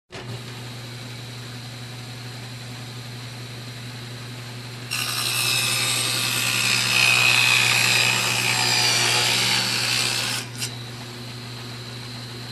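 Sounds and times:
electric cutter machine running: 0:04.9 - 0:12.2.

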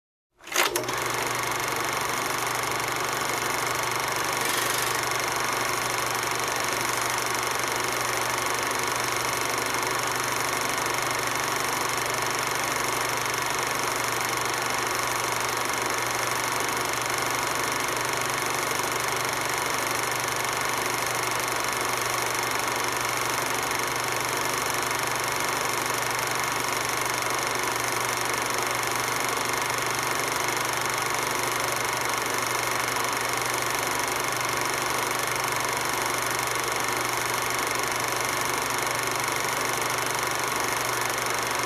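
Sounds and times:
cinema camera projector running: 0:00.4 - 0:41.6.

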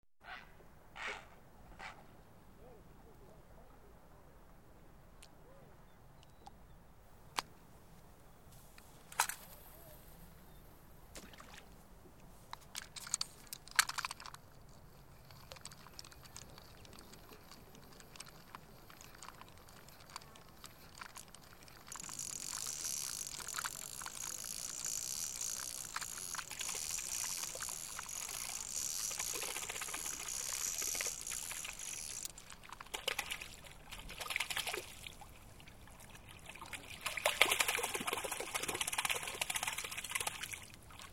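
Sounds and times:
forest lake ambience while fishing: 0:08.2 - 0:41.1.

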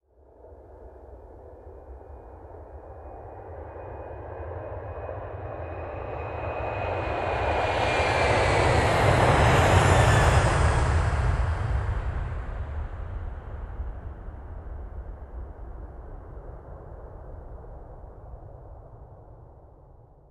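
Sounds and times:
aircraft ascending: 0:05.7 - 0:12.2.

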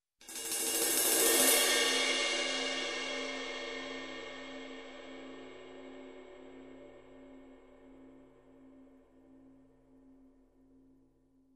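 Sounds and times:
cymbal swell: 0:00.4 - 0:08.3.

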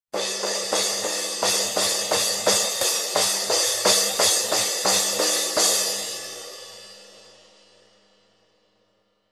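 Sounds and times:
drum crash hits: 0:00.2 - 0:06.5.

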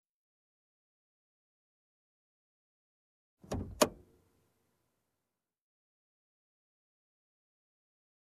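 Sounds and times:
car middle console click: 0:03.4 - 0:04.0.

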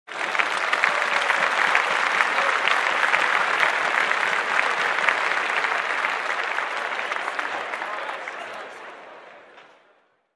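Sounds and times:
introduction applause: 0:00.0 - 0:10.3.

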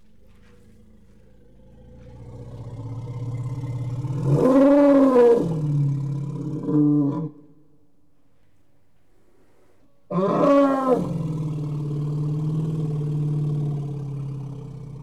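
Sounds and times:
elephant deep rumbling growl: 0:00.0 - 0:06.8, 0:10.2 - 0:15.0.

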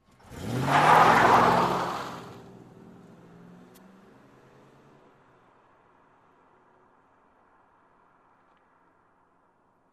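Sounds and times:
vehicle driving away fast: 0:00.1 - 0:05.0.

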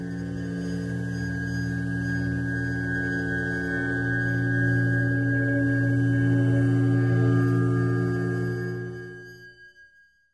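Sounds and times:
weird glassy horror riser: 0:00.1 - 0:09.4.

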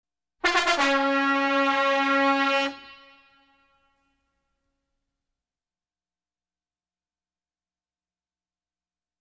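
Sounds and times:
trumpets presenting fanfare: 0:00.4 - 0:04.2.

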